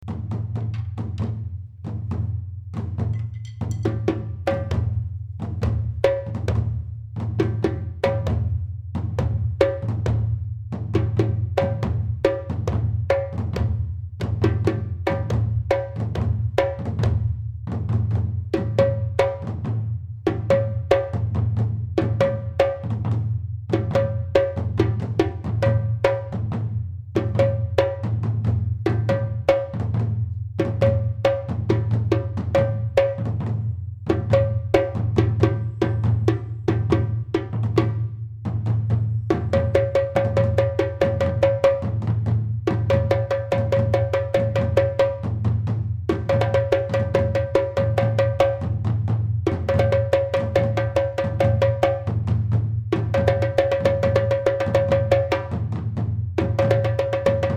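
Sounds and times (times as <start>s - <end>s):
djembe: 0.0s - 57.5s
duny drum: 0.0s - 57.5s.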